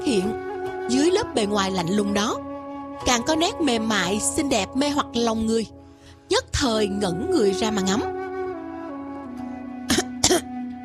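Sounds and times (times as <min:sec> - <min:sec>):
speech: 0:00.1 - 0:02.4, 0:03.0 - 0:08.2
coughing: 0:09.9 - 0:10.5.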